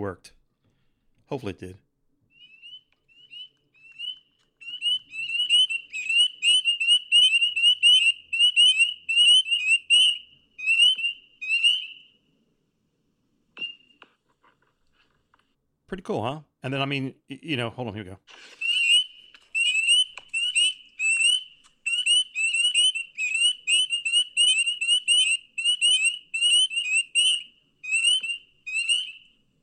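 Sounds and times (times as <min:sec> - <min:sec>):
speech: 0:00.0 - 0:00.4, 0:01.3 - 0:01.8, 0:15.9 - 0:18.6
chorus of frogs trilling outdoors: 0:02.4 - 0:12.0, 0:18.6 - 0:29.3.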